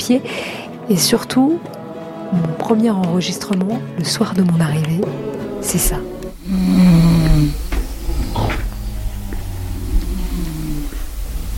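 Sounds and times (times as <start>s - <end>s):
speech: 0.1s - 7.6s
faint thumps: 5.8s - 11.3s
female neighbours snoring at night: 6.0s - 11.5s
faint creaks: 6.4s - 11.5s.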